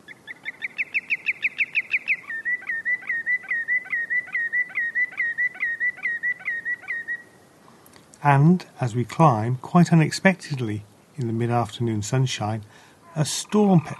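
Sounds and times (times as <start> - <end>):
greenshank calling from the rocky shore of an island: 0.0 - 7.4, 13.0 - 13.9
speech: 8.2 - 13.9.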